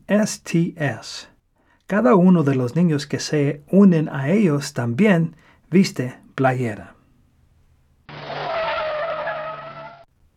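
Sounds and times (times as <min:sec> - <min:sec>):
speech: 0:00.1 - 0:01.3, 0:01.9 - 0:07.0
car tires screeching in a skid as a car stops abruptly: 0:08.1 - 0:10.1
faint road rumble: 0:08.1 - 0:10.3.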